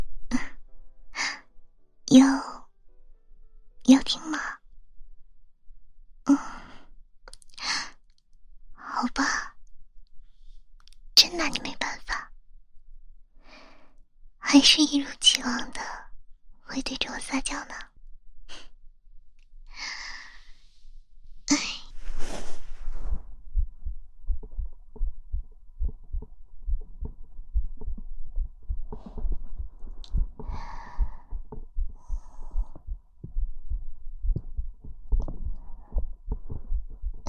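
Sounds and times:
soft breaths and sighs: 0:00.2 - 0:01.5, 0:06.3 - 0:09.6, 0:10.2 - 0:12.4, 0:13.4 - 0:18.8, 0:19.6 - 0:37.2
speech: 0:02.1 - 0:02.5, 0:03.9 - 0:04.6, 0:14.6 - 0:15.9, 0:16.7 - 0:17.9
girl's heartbeat thumping: 0:22.8 - 0:37.2.

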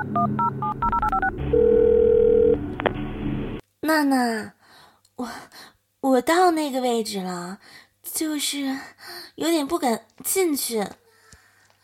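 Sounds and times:
speech: 0:00.0 - 0:01.8, 0:03.9 - 0:04.6, 0:05.2 - 0:11.0
beeping phone keypad tones: 0:00.0 - 0:02.6.

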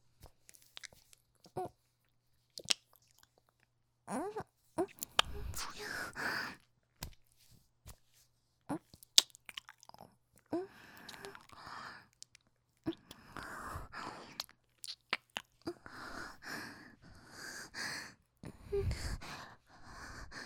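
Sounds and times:
person chewing something sweet: 0:00.3 - 0:01.2, 0:02.5 - 0:03.6, 0:04.9 - 0:05.9, 0:08.8 - 0:13.4, 0:14.1 - 0:15.7
wet mouth clicks: 0:00.5 - 0:01.2, 0:02.5 - 0:03.5, 0:04.8 - 0:06.1, 0:08.9 - 0:15.7
breathing: 0:05.4 - 0:06.6, 0:10.6 - 0:12.1, 0:13.1 - 0:14.4, 0:15.7 - 0:20.4.

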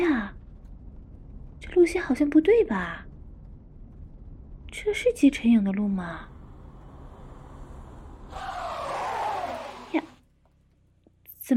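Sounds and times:
speech: 0:01.8 - 0:03.1, 0:04.8 - 0:06.3
faint road noise hum: 0:03.2 - 0:11.5
car tires screeching as it brakes hard in a small alley: 0:06.3 - 0:10.2.

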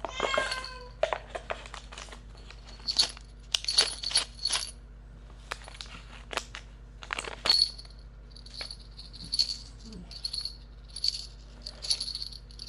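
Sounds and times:
clatters: 0:00.2 - 0:04.8, 0:07.0 - 0:12.6
small bell jingling: 0:02.7 - 0:04.8, 0:07.5 - 0:12.6.

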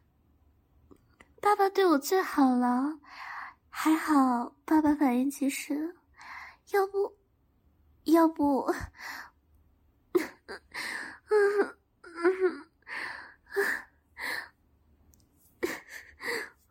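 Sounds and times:
speech: 0:01.4 - 0:06.0, 0:06.7 - 0:07.2, 0:08.0 - 0:09.3, 0:10.5 - 0:12.6
person crying with wailing sobs: 0:11.3 - 0:12.7.

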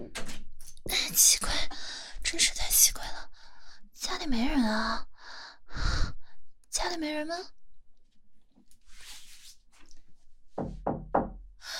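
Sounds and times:
speech: 0:01.2 - 0:01.5, 0:02.3 - 0:03.4, 0:04.1 - 0:05.1, 0:06.8 - 0:07.6
firm knocking on a door: 0:10.6 - 0:11.5.

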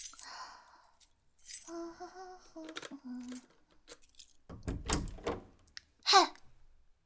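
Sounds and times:
speech: 0:02.1 - 0:03.6
bunch of metal keys jangling: 0:04.5 - 0:05.6
solid clunks of a bedroom door being unlocked: 0:04.5 - 0:05.6.

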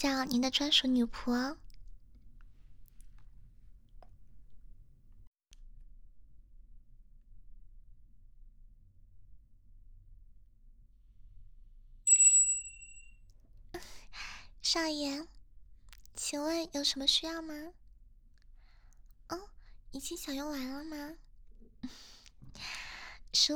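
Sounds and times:
speech: 0:00.0 - 0:01.6, 0:14.7 - 0:15.4, 0:16.2 - 0:17.8, 0:19.3 - 0:21.2, 0:21.8 - 0:23.5
small bell on a table being rung: 0:12.1 - 0:13.2.

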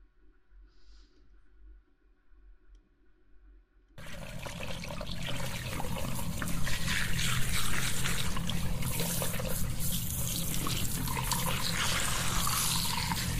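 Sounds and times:
water rinsing hair: 0:04.0 - 0:13.3.

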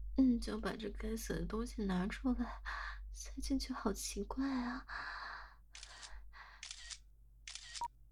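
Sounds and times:
speech: 0:00.2 - 0:05.2
camera shutter clicks taking a photo: 0:05.8 - 0:06.1, 0:06.6 - 0:07.9.

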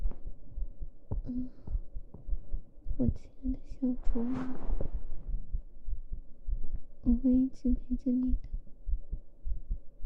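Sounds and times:
heartbeat heard against a person's chest: 0:00.0 - 0:10.0
rumble: 0:00.6 - 0:08.5
speech: 0:01.3 - 0:01.6, 0:03.0 - 0:05.0, 0:07.0 - 0:08.5.

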